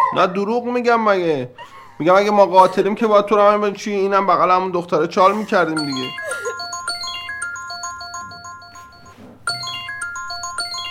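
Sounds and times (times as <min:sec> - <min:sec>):
speech: 0:00.1 - 0:06.4
mobile phone ringtone with bright electronic beeping melody: 0:05.8 - 0:10.8.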